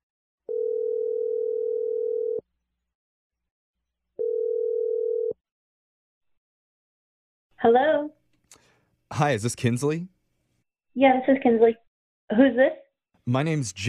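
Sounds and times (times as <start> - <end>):
long steady telephone ringing tones: 0.5 - 2.4, 4.2 - 5.4
speech: 7.6 - 8.1, 9.1 - 10.1, 10.9 - 13.8.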